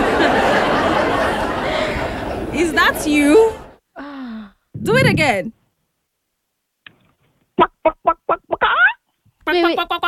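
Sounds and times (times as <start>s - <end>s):
laughter: 0.0s - 2.5s
speech: 2.9s - 3.6s, 4.8s - 5.6s, 7.6s - 8.8s, 9.5s - 10.0s
person imitating a clucking chicken: 7.6s - 9.0s.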